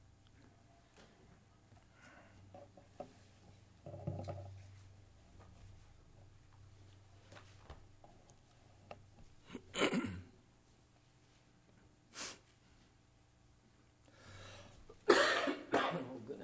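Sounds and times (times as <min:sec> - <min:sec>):
person coughing to dislodge something stuck in the throat: 0:09.5 - 0:10.3, 0:15.1 - 0:16.2
throat clearing: 0:09.5 - 0:10.3, 0:15.1 - 0:16.2.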